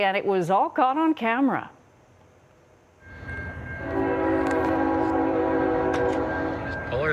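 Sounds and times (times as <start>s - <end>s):
speech: 0.0s - 1.8s
train rumble approaching a level crossing: 3.0s - 7.1s.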